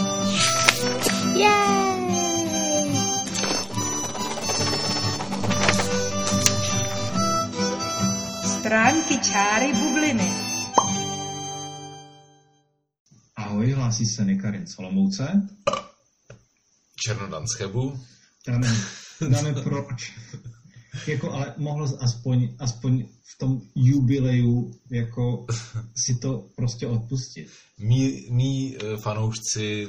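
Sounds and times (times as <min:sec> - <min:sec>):
podcast intro jingle with bell-like tones and synth glides: 0:00.1 - 0:08.4
person shouting: 0:01.2 - 0:03.3
speech: 0:01.4 - 0:01.8, 0:08.7 - 0:10.4, 0:13.9 - 0:15.8, 0:17.1 - 0:29.8
laughter: 0:18.6 - 0:20.0.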